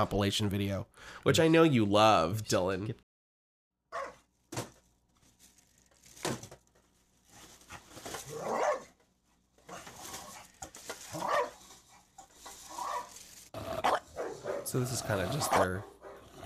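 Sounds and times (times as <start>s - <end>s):
speech: 0.0s - 3.1s, 14.7s - 16.0s
bulldog barking with jowly snarling growls: 3.9s - 4.2s, 8.1s - 9.0s, 9.6s - 16.4s.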